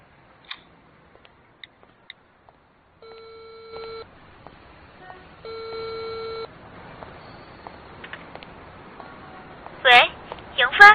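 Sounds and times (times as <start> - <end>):
electronic telephone ringing tone: 3.0 - 4.1, 5.4 - 6.5.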